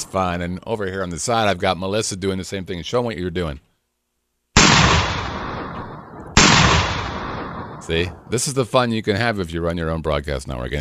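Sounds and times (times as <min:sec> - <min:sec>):
speech: 0:00.1 - 0:03.7, 0:07.9 - 0:10.7
gunshot sound effects: 0:04.6 - 0:08.6.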